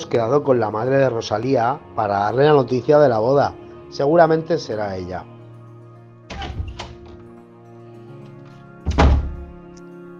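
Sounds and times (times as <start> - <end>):
speech: 0.1 - 5.3
door opening with solid wooden thunks: 6.3 - 7.2, 8.8 - 9.5.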